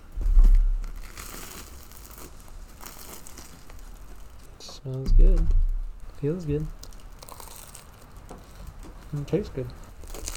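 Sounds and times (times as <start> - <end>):
loaf of freshly baked bread torn open by hand: 0.4 - 4.6, 6.8 - 10.3
speech: 4.8 - 5.6, 6.2 - 6.8, 9.1 - 9.8.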